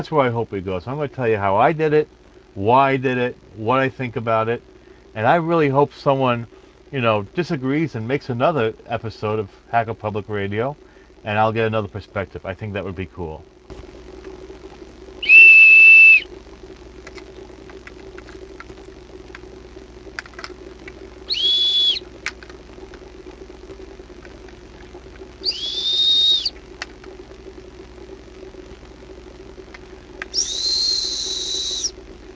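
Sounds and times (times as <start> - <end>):
speech: 0.0 - 13.9
low hum: 0.0 - 32.3
short clear whistle tones at different pitches: 15.2 - 16.3, 21.3 - 22.1, 25.4 - 26.6, 30.3 - 32.0.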